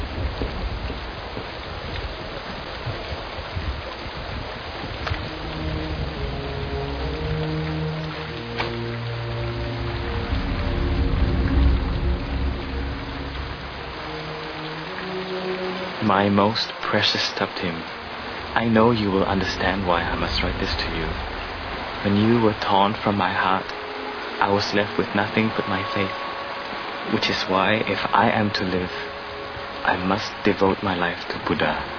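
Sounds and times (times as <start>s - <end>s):
heavy rain falling: 0.0s - 31.9s
deep low rumble: 4.9s - 8.0s, 9.4s - 14.3s, 18.4s - 23.2s
speech: 16.1s - 18.0s, 18.6s - 21.4s, 22.0s - 23.8s, 24.4s - 26.2s, 27.1s - 29.1s, 29.8s - 31.9s.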